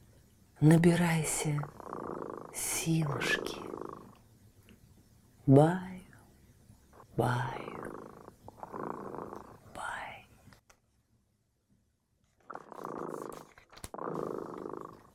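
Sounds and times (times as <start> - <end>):
speech: 0.6 - 1.8, 2.6 - 3.7, 5.5 - 5.9, 7.2 - 8.1
cat purring: 0.9 - 4.3, 6.9 - 10.5, 12.3 - 15.1.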